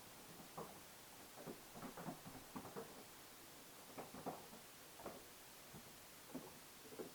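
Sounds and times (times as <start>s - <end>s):
dragging footsteps on stairs: 0.2s - 7.1s.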